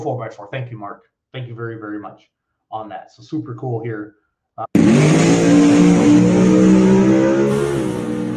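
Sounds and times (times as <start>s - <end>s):
speech: 0.0s - 7.4s
race car engine revving at a drag strip at Tulsa Raceway Park: 4.8s - 8.3s.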